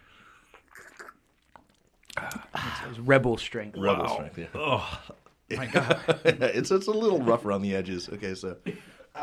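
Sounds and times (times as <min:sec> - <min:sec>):
chewing a snack: 0:00.4 - 0:02.9
speech: 0:02.8 - 0:09.2
laughter: 0:04.6 - 0:06.8.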